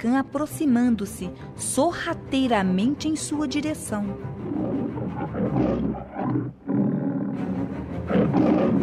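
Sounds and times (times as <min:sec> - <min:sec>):
speech: 0:00.0 - 0:04.6, 0:05.2 - 0:06.8, 0:08.1 - 0:08.8
tiger roaring: 0:04.4 - 0:08.8.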